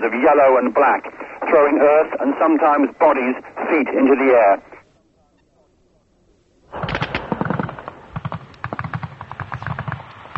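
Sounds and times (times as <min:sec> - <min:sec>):
speech: 0:00.0 - 0:04.7
machine gun fire in a night battle on a rocky hillside: 0:06.7 - 0:10.3.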